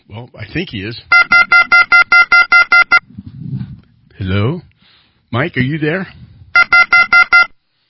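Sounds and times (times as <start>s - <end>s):
speech: 0.1s - 1.3s, 4.2s - 4.7s, 5.3s - 6.2s
electronic beeps over a phone line: 1.1s - 3.1s, 6.6s - 7.5s.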